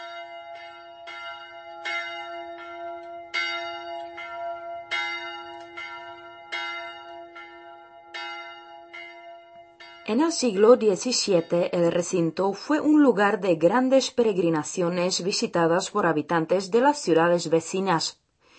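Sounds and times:
old church bell tolling from a bell tower: 0:00.0 - 0:11.7
speech: 0:10.1 - 0:18.2.

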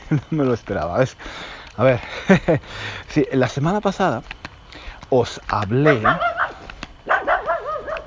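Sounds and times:
laughter: 0:00.0 - 0:03.1
speech: 0:00.1 - 0:04.4, 0:05.1 - 0:06.3
dog giving high whiny barks and yelps: 0:05.8 - 0:08.0.

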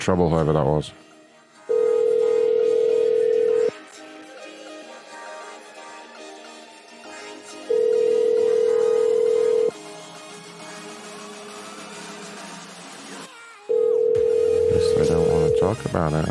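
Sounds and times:
speech: 0:00.0 - 0:01.0, 0:15.7 - 0:16.2
outgoing phone call ringing tone: 0:01.7 - 0:03.7, 0:07.7 - 0:09.7, 0:13.7 - 0:15.8.

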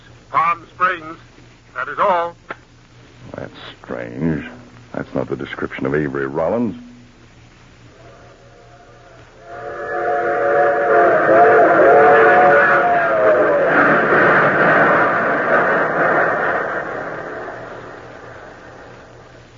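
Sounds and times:
speech: 0:01.8 - 0:02.4, 0:03.4 - 0:06.9
loud multi-tone train whistle: 0:07.9 - 0:16.3
train running on rails: 0:09.4 - 0:19.1.

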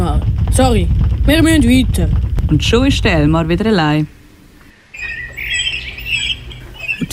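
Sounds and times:
speech: 0:00.6 - 0:04.2
small flock of birds chirping and twittering flying past overhead: 0:02.6 - 0:07.1.

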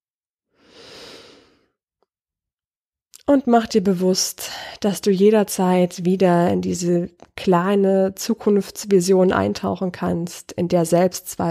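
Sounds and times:
deep breath: 0:00.5 - 0:01.8
speech: 0:03.3 - 0:11.4.

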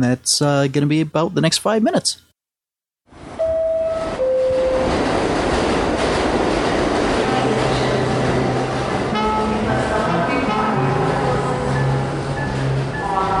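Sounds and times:
speech: 0:00.0 - 0:02.3
subway train passing through 42nd Street station under Times Square in New York City: 0:03.1 - 0:13.3.

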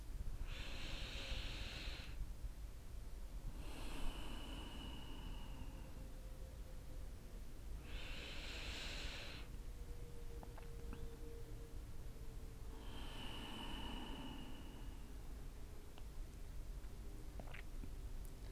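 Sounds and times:
steady hiss: 0:00.0 - 0:18.5
deep slow breaths during a guided breathing exercise: 0:00.4 - 0:02.3, 0:03.4 - 0:06.3, 0:07.8 - 0:10.3, 0:12.6 - 0:15.6.

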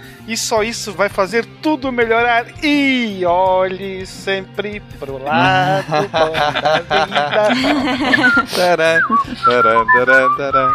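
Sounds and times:
fuller tonal backing music: 0:00.0 - 0:10.7
speech: 0:00.2 - 0:10.7
laughter: 0:05.3 - 0:10.7
person whistling a bouncy tune: 0:08.0 - 0:10.7.

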